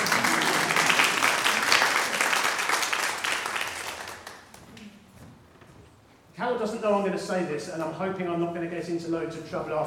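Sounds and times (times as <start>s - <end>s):
crowd of many people applauding: 0.0s - 4.6s
speech: 6.6s - 9.8s.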